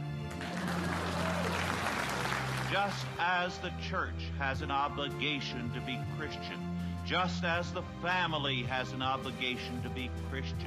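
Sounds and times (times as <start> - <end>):
audience clapping steadily and loudly: 0.0 - 3.4
speech: 2.7 - 10.6.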